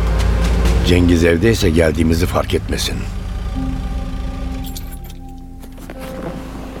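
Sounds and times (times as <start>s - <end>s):
steady low engine hum of a parked car: 0.0s - 6.7s
speech: 0.8s - 3.2s
keys jingling: 4.6s - 6.4s.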